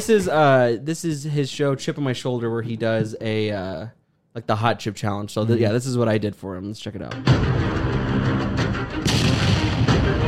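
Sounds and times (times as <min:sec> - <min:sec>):
speech: 0:00.0 - 0:08.4
explosion sound effect: 0:09.0 - 0:10.2.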